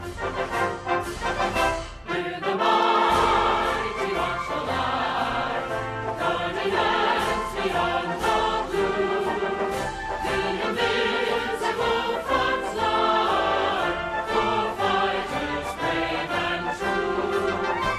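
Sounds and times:
military band playing a full-band march: 0.0 - 17.9.

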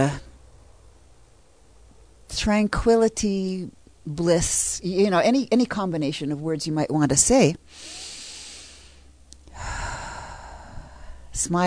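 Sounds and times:
speech: 0.0 - 0.2, 2.3 - 8.0, 11.4 - 11.6
Ujjayi breathing during a relaxation exercise: 7.7 - 11.3.

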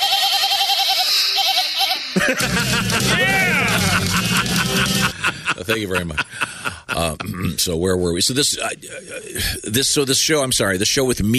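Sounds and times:
goat bleating in quavering cries: 0.0 - 2.2, 3.0 - 4.1
laughter: 2.1 - 7.6
speech: 5.6 - 11.3.

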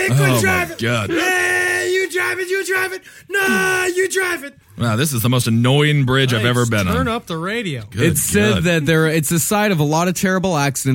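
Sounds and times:
person imitating a ghostly scream with a wavering wail: 0.0 - 2.3, 3.3 - 4.1
speech: 0.1 - 1.4, 2.3 - 10.9.

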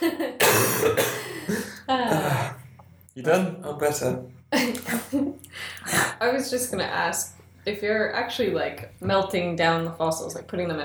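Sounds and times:
person coughing: 0.1 - 2.6
speech: 3.2 - 5.0, 6.2 - 10.8.

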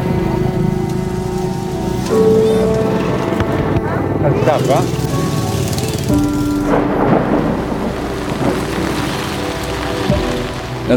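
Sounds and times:
deep rolls of thunder rumbling: 0.0 - 10.9
steady heavy rain pouring down: 0.0 - 10.9
speech: 4.2 - 5.1.

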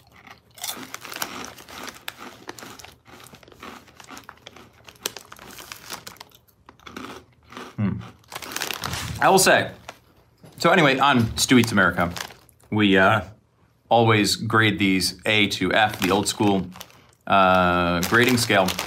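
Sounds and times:
cinnamon-coated corn snack chips being chewed: 0.0 - 12.8, 15.8 - 18.8
crinkly snack bag rustling: 8.6 - 9.5
speech: 9.2 - 9.8, 10.6 - 18.8.

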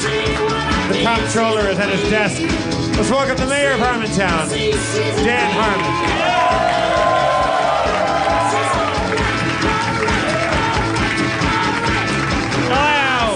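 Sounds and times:
audience clapping: 0.0 - 1.1, 5.1 - 13.3
speech: 0.9 - 6.7
large live theater audience cheering and whooping: 5.0 - 12.6.

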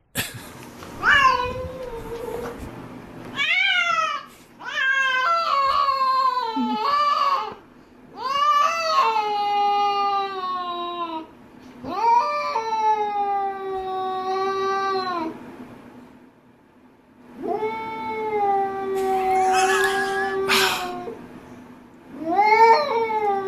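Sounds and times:
cats yowling while mating: 1.0 - 2.6, 3.3 - 7.6, 8.2 - 15.4, 17.4 - 21.2, 22.2 - 23.4.

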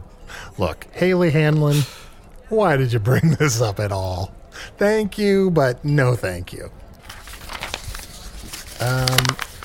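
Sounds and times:
speech: 0.6 - 6.8, 8.8 - 9.5
paper being crumpled to throw it away: 7.0 - 9.6.

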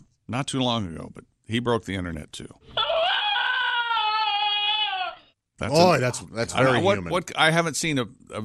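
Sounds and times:
speech: 0.3 - 2.8, 5.6 - 8.4
small terrier-looking dog screaming shrilly: 2.8 - 5.4.

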